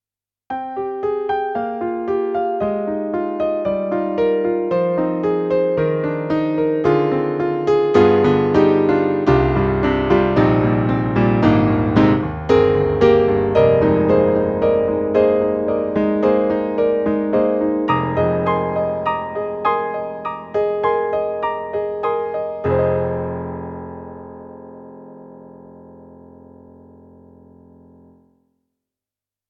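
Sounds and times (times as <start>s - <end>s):
Roland SK-88Pro GM piano: 0.5s - 28.5s.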